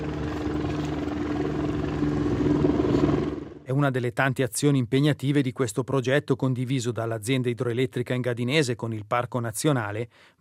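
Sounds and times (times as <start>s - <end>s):
helicopter flying overhead with rotor thrum and engine drone: 0.0s - 3.7s
speech: 3.8s - 10.3s.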